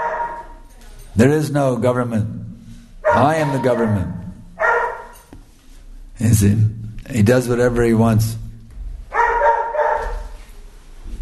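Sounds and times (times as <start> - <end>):
dog barking: 0.0 - 0.6, 3.0 - 5.3, 9.1 - 10.4
speech: 1.2 - 2.5, 3.2 - 4.2, 6.2 - 8.4.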